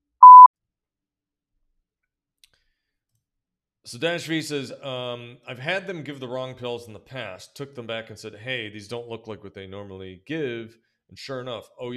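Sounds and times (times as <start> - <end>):
short electronic beep tone: 0.2 - 0.5
speech: 3.9 - 11.9.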